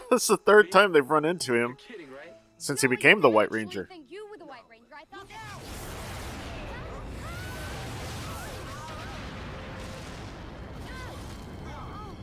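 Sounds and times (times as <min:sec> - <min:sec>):
speech: 0:00.1 - 0:04.2
explosion sound effect in a forest: 0:05.6 - 0:12.2.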